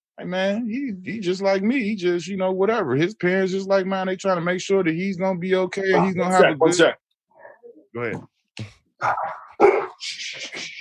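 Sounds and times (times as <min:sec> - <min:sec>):
speech: 0:00.2 - 0:07.0, 0:07.9 - 0:10.7
dog barking: 0:09.6 - 0:10.0.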